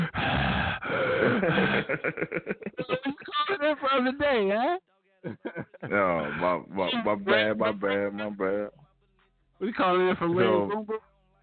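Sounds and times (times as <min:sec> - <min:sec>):
heavy breathing straight into a microphone: 0:00.0 - 0:01.9
laughter: 0:00.9 - 0:04.0, 0:05.2 - 0:08.7, 0:10.1 - 0:11.0
speech: 0:01.4 - 0:08.8, 0:09.6 - 0:11.1.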